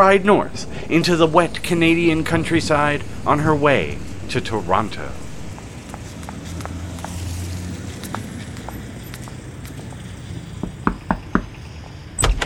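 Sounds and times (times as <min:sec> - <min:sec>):
speech: 0:00.0 - 0:05.2
low rumbling road noise: 0:00.0 - 0:12.4
knocking on a door: 0:10.6 - 0:11.6.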